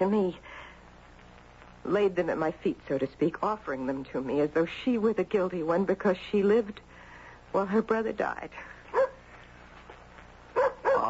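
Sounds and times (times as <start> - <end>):
speech: 0.0 - 0.5, 1.8 - 8.7
dog barking and whimpering at a door: 8.9 - 9.2, 10.6 - 11.0.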